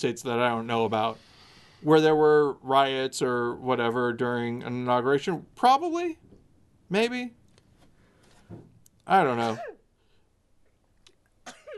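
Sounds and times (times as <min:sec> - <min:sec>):
speech: 0:00.0 - 0:06.3, 0:06.9 - 0:07.4, 0:08.5 - 0:09.8
sneeze: 0:09.4 - 0:09.9.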